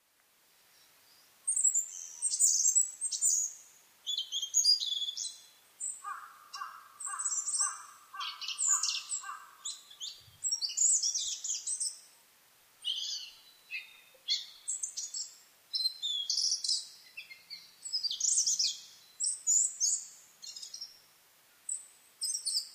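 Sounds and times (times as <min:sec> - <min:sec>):
Asian brown flycatcher calling: 0:01.5 - 0:12.0, 0:12.8 - 0:21.0.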